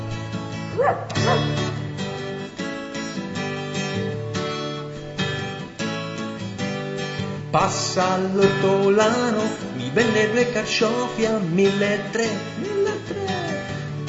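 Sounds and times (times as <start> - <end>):
steady musical backdrop: 0.0 - 14.0
speech: 0.8 - 1.5, 7.6 - 13.2
dog barking: 0.8 - 1.6.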